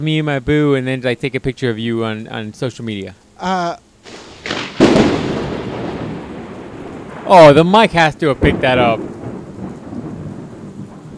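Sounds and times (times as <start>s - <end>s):
speech: 0.0s - 4.2s, 7.3s - 9.2s
rain hiss during storm: 0.0s - 11.1s
thunder rumbling during storm: 4.0s - 11.1s.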